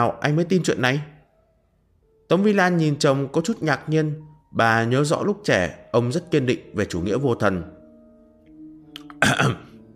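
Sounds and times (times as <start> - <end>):
speech: 0.0 - 1.1, 2.3 - 7.8, 9.2 - 9.7
embarrassed dry cough: 9.2 - 9.8.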